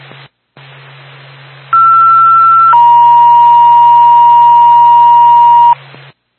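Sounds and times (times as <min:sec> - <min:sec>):
ambulance dispatch paging tone: 0:01.8 - 0:05.8.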